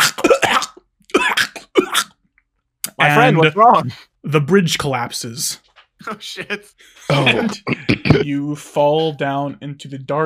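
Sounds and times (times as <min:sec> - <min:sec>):
voice imitating a snake coughing and hacking: 0:00.0 - 0:02.2, 0:02.9 - 0:03.4, 0:07.1 - 0:08.3
speech: 0:03.0 - 0:10.2
laughter: 0:03.2 - 0:04.0, 0:06.1 - 0:08.4.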